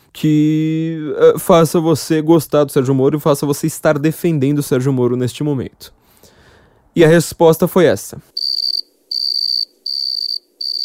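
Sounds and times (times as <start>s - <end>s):
speech: 0.2s - 6.0s, 7.0s - 10.8s
crickets chirping in trilling bursts: 8.3s - 10.8s.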